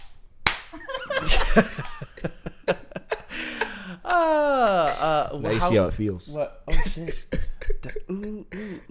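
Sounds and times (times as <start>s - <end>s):
sharp slap: 0.0s - 0.8s
speech: 0.7s - 2.4s, 5.0s - 8.9s
laughter: 0.8s - 5.2s.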